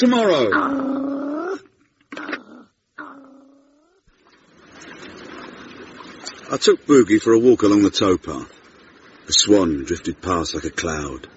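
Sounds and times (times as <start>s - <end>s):
speech: 0.0s - 1.0s, 6.5s - 8.6s, 9.3s - 11.3s
soft hissing background: 0.0s - 11.3s
animal growling in drawn-out tonal cries: 0.2s - 4.0s.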